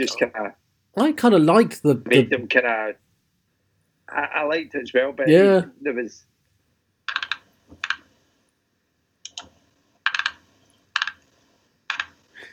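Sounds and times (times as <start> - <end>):
speech: 0.0 - 3.0, 4.1 - 6.3
computer mouse scroll wheel clicking: 7.1 - 8.1, 9.2 - 12.2.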